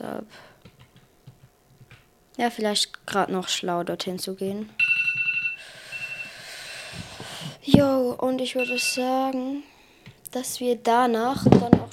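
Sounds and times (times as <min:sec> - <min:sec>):
speech: 0:00.0 - 0:00.6, 0:02.4 - 0:04.8, 0:07.7 - 0:09.7, 0:10.3 - 0:11.8
high-pitched electronic timer alarm beeping: 0:04.8 - 0:06.9, 0:08.6 - 0:09.4.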